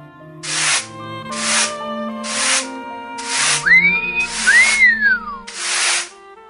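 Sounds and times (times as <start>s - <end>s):
hand plane shaving wood: 0.4s - 6.2s
man whistling: 3.6s - 5.5s.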